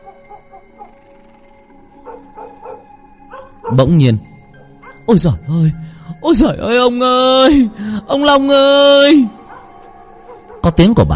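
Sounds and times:
dog barking furiously: 0:00.0 - 0:01.0, 0:02.0 - 0:03.9, 0:04.8 - 0:05.1, 0:09.4 - 0:10.8
speech: 0:03.7 - 0:04.3, 0:05.1 - 0:09.4, 0:10.6 - 0:11.1.

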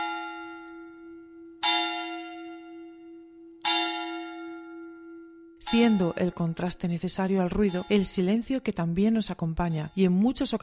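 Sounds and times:
church bell tolling: 0:00.0 - 0:08.5
speech: 0:05.6 - 0:10.6.

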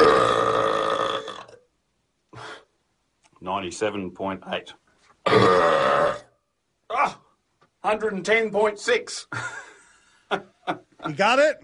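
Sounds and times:
loud burp in a world's loudest burp attempt: 0:00.0 - 0:01.7, 0:05.2 - 0:07.2
speech: 0:03.4 - 0:06.2, 0:07.8 - 0:09.6, 0:10.3 - 0:11.6.

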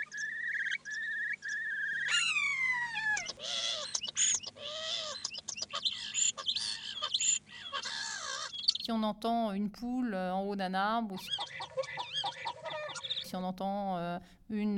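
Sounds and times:
starling living around a parking area mimicking a car alarm: 0:00.1 - 0:08.9, 0:11.2 - 0:13.3
speech: 0:08.9 - 0:11.4, 0:13.3 - 0:14.7.

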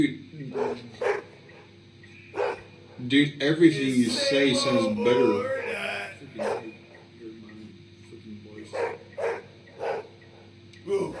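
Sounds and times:
speech: 0:00.0 - 0:00.9, 0:03.0 - 0:05.6
low steady hum: 0:00.0 - 0:11.1
dog barking: 0:00.5 - 0:01.3, 0:02.3 - 0:02.7, 0:06.4 - 0:07.0, 0:08.7 - 0:10.1.

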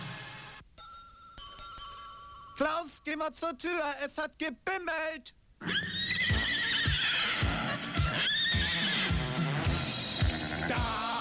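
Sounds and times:
speech: 0:02.6 - 0:05.9
horse in a hallway whinnying: 0:05.6 - 0:11.1.

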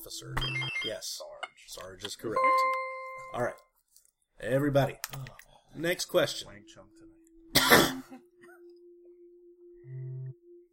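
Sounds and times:
speech: 0:00.0 - 0:03.7, 0:04.4 - 0:08.3
low buzzing tone: 0:06.6 - 0:10.7
person coughing into a microphone: 0:07.5 - 0:08.2.

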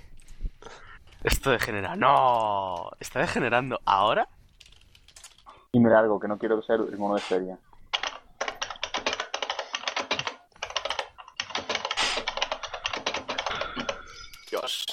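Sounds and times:
speech: 0:01.2 - 0:04.4, 0:05.7 - 0:07.7
someone typing hard on a computer keyboard: 0:07.9 - 0:14.7.

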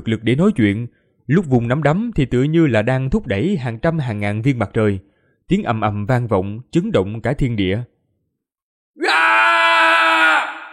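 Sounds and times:
speech: 0:00.0 - 0:07.9
man screaming loudly in a strained cry: 0:09.0 - 0:10.7.

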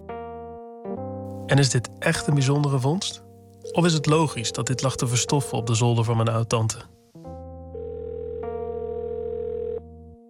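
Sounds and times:
speech: 0:01.5 - 0:07.0
telephone ringing tone while calling a friend: 0:03.6 - 0:05.9, 0:07.8 - 0:10.0.

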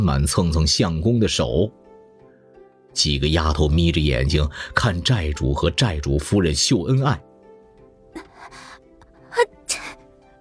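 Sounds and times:
speech: 0:00.0 - 0:01.8, 0:03.0 - 0:07.3
soft breath sounds: 0:08.2 - 0:10.0
young woman sneezing in a palace hall: 0:08.2 - 0:10.0.

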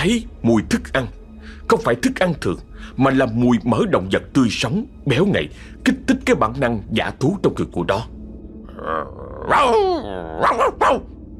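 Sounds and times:
speech: 0:00.0 - 0:08.2, 0:08.8 - 0:11.2
faint low rumble: 0:06.8 - 0:11.3
dog growling and snarling: 0:08.7 - 0:11.1
dog barking fiercely: 0:09.5 - 0:09.8, 0:10.4 - 0:11.2.

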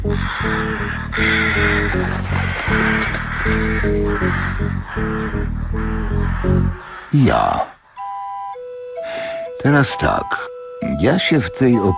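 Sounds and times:
large flock of crows cawing over a cemetery: 0:00.0 - 0:07.8
speech: 0:01.2 - 0:07.7, 0:09.6 - 0:11.9.

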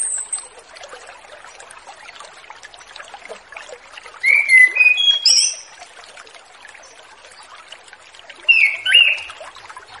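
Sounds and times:
orange-headed thrush whistling song: 0:04.2 - 0:05.7, 0:08.5 - 0:09.4.

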